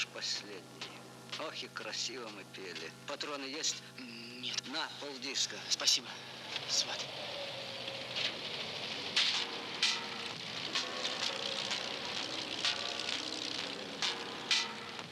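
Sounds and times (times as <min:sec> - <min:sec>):
speech: 0:00.2 - 0:07.4
steady rain falling: 0:06.4 - 0:15.1.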